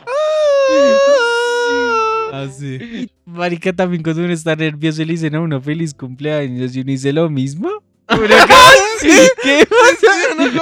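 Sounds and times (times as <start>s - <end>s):
voice imitating a night-shift guard crying: 0.0s - 3.1s, 8.1s - 10.6s
laughter: 0.7s - 2.0s, 8.1s - 10.6s
speech: 3.4s - 10.6s.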